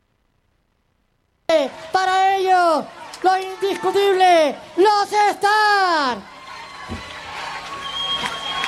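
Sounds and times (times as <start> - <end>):
audience in a packed venue applauding a standing ovation: 1.7 - 4.5, 6.1 - 8.6
speech: 2.8 - 6.4.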